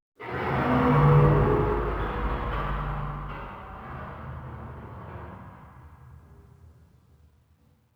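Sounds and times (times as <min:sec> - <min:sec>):
metal groaning: 0:00.2 - 0:06.2.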